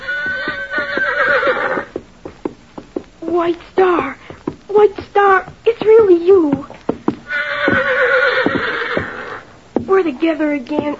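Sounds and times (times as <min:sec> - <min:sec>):
horse whinnying with a loud quavering whinny: 0:00.0 - 0:01.9, 0:07.3 - 0:09.5
horse clip-clopping hoofbeats: 0:00.0 - 0:10.9
speech: 0:03.4 - 0:06.7, 0:09.9 - 0:10.9.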